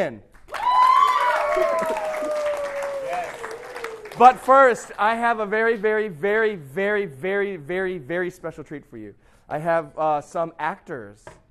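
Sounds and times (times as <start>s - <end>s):
speech: 0.0s - 0.3s, 4.2s - 11.4s
audience applause: 0.4s - 5.0s
long whooping cheer gliding downward: 0.5s - 4.2s.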